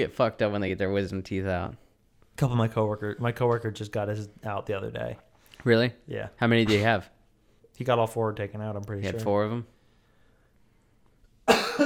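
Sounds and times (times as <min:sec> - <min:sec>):
speech: 0:00.0 - 0:01.8, 0:02.4 - 0:07.2, 0:07.8 - 0:09.7
person coughing harshly: 0:06.6 - 0:07.0, 0:11.5 - 0:11.8.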